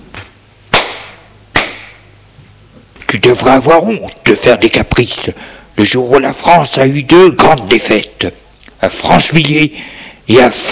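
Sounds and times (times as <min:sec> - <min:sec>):
father slapping son across the face: 0:00.2 - 0:02.0
speech: 0:03.1 - 0:10.7.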